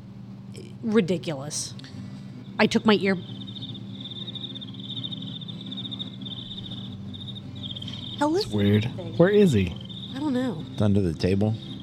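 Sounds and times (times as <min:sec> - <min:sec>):
low hum: 0:00.0 - 0:11.8
speech: 0:00.6 - 0:02.0, 0:02.6 - 0:03.4, 0:08.2 - 0:11.7
cricket chirping: 0:02.4 - 0:11.8.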